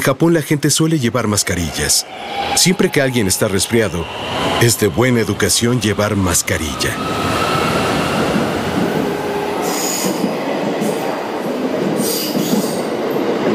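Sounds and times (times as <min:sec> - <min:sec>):
speech: 0:00.0 - 0:07.7
narrow-gauge Limited Express train in Japan running past: 0:01.2 - 0:13.5.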